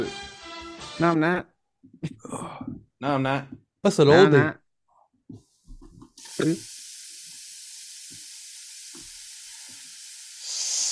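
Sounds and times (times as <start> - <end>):
speech: 1.0 - 4.6, 6.4 - 6.8
food sizzling on a hot grill: 6.2 - 10.9.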